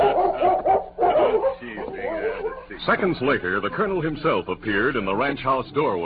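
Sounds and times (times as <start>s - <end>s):
large German shepherd barking and yipping in welcome: 0.0s - 2.7s
speech: 2.8s - 6.0s.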